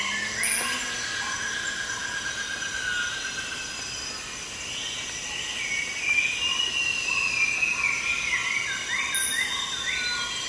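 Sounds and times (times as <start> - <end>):
thin rising and falling calls: 0.0 - 2.1
insects droning with high buzzing tones in an early-morning Borneo rainforest: 0.0 - 10.4.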